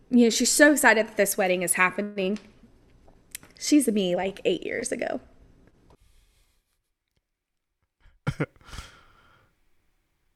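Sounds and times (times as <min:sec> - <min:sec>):
speech: 0:00.1 - 0:02.5, 0:03.6 - 0:05.3, 0:08.4 - 0:08.9
softer burst of breath: 0:08.0 - 0:09.5
person sneezing: 0:08.3 - 0:09.2
quick inhale: 0:08.6 - 0:09.5.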